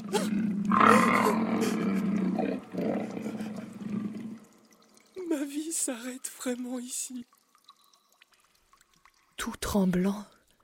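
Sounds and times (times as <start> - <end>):
lion roaring: 0.0 - 4.4
speech: 5.9 - 7.4, 9.5 - 10.4.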